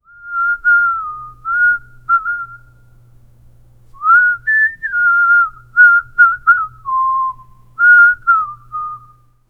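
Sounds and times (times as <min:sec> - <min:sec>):
slow melancholic whistle: 0:00.0 - 0:02.8, 0:04.0 - 0:09.4.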